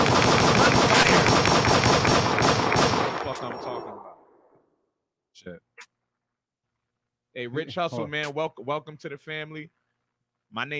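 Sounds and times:
rapid machine-gun fire used as a gunshot sound effect in a beat: 0.0 - 4.0
speech: 5.5 - 5.7, 7.4 - 9.8, 10.5 - 10.7.

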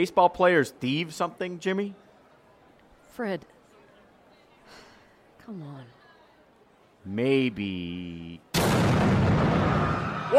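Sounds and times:
speech: 0.0 - 2.0, 3.2 - 3.6, 5.5 - 6.0, 7.0 - 9.0
confetti cannon blast: 8.6 - 10.2.

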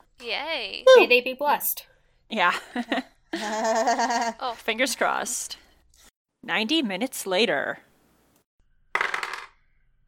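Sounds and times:
speech: 0.2 - 5.6, 6.4 - 7.9
new dice rattling across a hard tabletop during a tabletop roleplaying game: 9.0 - 9.6.

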